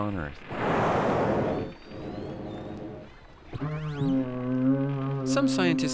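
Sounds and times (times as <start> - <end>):
speech: 0.0 - 0.8, 5.3 - 5.9
orca faint high and upswept whistles: 0.3 - 5.3
orca steady low multi-banded call: 0.3 - 5.9
rushing noise: 0.5 - 2.9.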